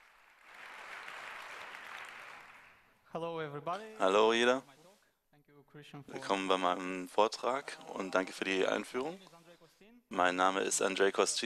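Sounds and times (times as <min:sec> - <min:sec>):
audience applause at a talk: 0:00.0 - 0:02.9
speech: 0:03.1 - 0:04.8, 0:05.7 - 0:09.4, 0:10.1 - 0:11.4.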